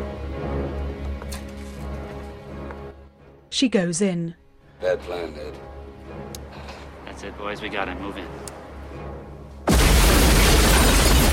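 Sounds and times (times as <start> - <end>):
speech: 3.5 - 5.7, 7.2 - 9.0
huge fiery explosion beside a restaurant near a river: 9.7 - 11.3.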